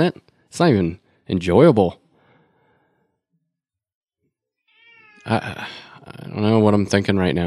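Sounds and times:
speech: 0:00.0 - 0:02.0, 0:05.2 - 0:07.4
cat yowling loudly into the microphone: 0:04.7 - 0:05.3.

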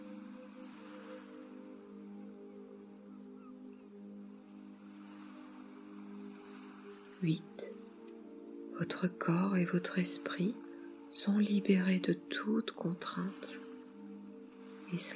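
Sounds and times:
ocean waves washing in: 0:00.0 - 0:15.1
sustained low humming drone: 0:00.0 - 0:15.1
speech: 0:07.2 - 0:07.8, 0:08.8 - 0:13.6, 0:14.9 - 0:15.1.

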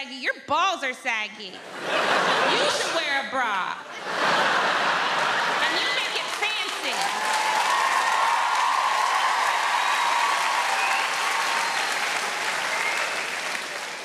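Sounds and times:
speech: 0:00.0 - 0:04.6
laughter: 0:01.6 - 0:07.5
large audience of women clapping: 0:05.2 - 0:14.0.

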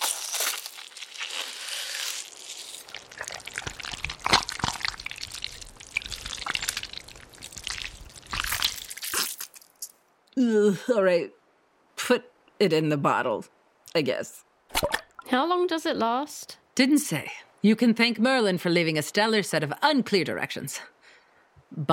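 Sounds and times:
wet squelching of a kidney being cut out of an ocean creature: 0:00.0 - 0:09.9
speech: 0:10.4 - 0:11.4, 0:12.1 - 0:14.4, 0:15.3 - 0:21.0, 0:21.7 - 0:21.9.

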